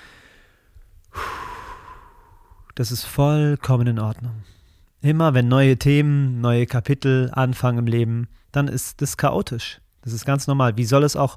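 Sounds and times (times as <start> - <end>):
deep breath in and out: 0.0 - 2.7
speech: 2.8 - 11.3.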